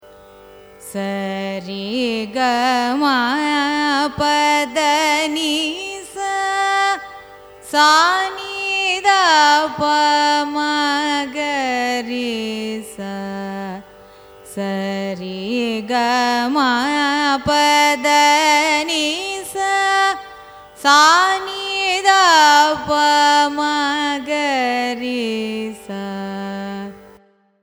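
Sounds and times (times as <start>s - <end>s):
Carnatic music raga ascending and descending scale: 0.0s - 27.6s.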